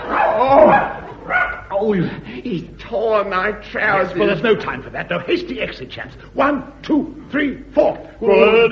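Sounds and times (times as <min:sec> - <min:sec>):
wolfhound barking and yipping: 0:00.1 - 0:01.7
speech: 0:01.9 - 0:08.7.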